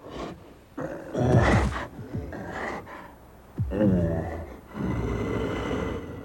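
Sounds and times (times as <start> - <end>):
several bears grunting and snorting: 0.0 - 6.2.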